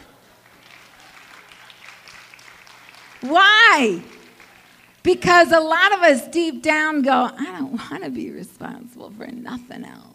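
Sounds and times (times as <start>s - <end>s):
audience sparse hand clapping in a church: 0.4s - 5.0s
speech: 3.2s - 4.2s, 5.0s - 10.1s.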